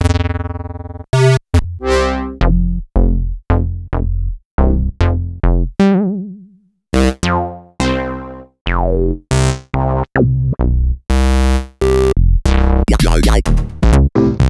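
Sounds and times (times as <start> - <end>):
synth bass: 0.0 - 14.4.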